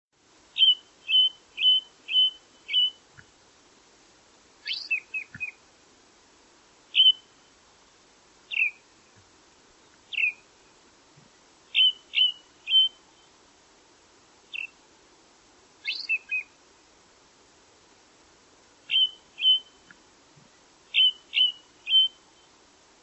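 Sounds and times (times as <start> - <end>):
short sharp high bird chirps: 0.6 - 3.3, 4.6 - 5.6, 6.9 - 7.5, 8.5 - 8.8, 9.8 - 10.5, 11.7 - 13.3, 14.5 - 14.8, 15.8 - 16.5, 18.9 - 20.0, 20.9 - 22.5.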